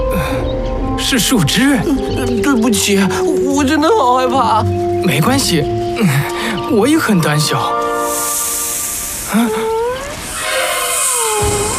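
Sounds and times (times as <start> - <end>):
speech: 1.1 - 8.3, 9.3 - 9.7
snake hissing: 7.9 - 11.7.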